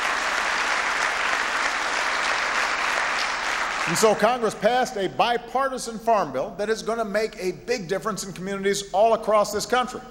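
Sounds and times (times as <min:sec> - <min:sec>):
large audience applauding: 0:00.0 - 0:04.7
speech: 0:03.9 - 0:10.0.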